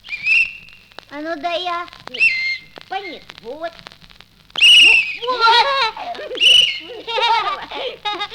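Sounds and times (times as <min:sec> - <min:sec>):
metal police-style whistle blasts: 0:00.0 - 0:01.0, 0:02.1 - 0:03.3, 0:04.6 - 0:05.3, 0:06.3 - 0:06.9
speech: 0:01.1 - 0:03.9, 0:05.2 - 0:08.3
laughter: 0:04.9 - 0:08.3.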